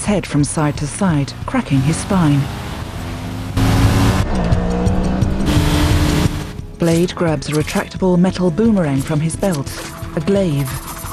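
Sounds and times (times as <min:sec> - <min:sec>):
motorcycles speeding forward: 0:00.0 - 0:07.9
speech: 0:00.1 - 0:02.6, 0:06.8 - 0:10.9.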